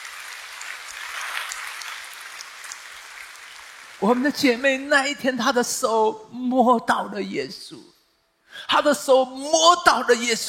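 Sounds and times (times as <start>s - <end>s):
large crowd applauding: 0.0s - 4.4s
speech: 4.0s - 7.9s, 8.6s - 10.4s.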